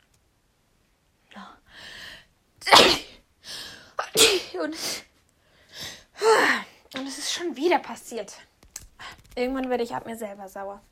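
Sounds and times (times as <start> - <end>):
person sneezing: 2.6 - 3.2, 4.0 - 5.1
speech: 4.6 - 5.0, 7.5 - 8.6, 9.4 - 10.9.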